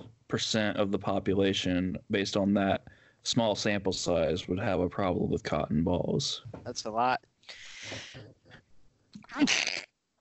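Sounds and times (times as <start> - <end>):
speech: 0.3 - 8.6, 9.2 - 9.8
person sneezing: 7.6 - 8.2, 9.2 - 9.9.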